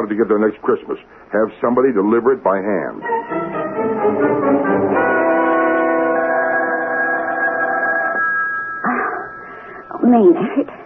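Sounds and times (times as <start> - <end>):
speech: 0.0 - 3.5, 10.0 - 10.8
telephone ringing: 3.0 - 10.5.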